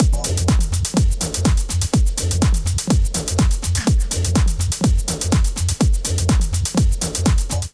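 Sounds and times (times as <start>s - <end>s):
124 bpm kit pattern from MIDI clips: 0.0s - 7.7s.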